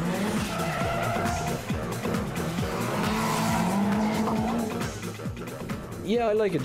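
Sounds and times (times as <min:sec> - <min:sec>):
drift car sustained tire squeal: 0:00.0 - 0:05.0
drift car engine revving: 0:00.0 - 0:05.7
speech: 0:06.1 - 0:06.6.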